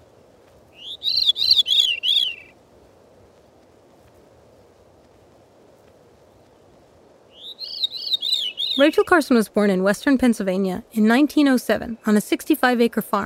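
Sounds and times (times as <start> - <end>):
soft steady outdoor hiss: 0.0 - 13.2
veery singing a fluty spiraling phrase: 0.7 - 2.6, 7.3 - 13.2
speech: 8.8 - 13.2.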